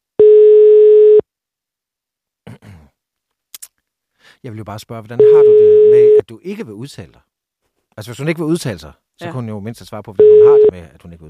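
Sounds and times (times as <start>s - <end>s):
telephone ringing tone: 0.2s - 1.2s, 5.2s - 6.2s, 10.2s - 10.7s
speech: 4.4s - 7.3s, 8.0s - 11.2s.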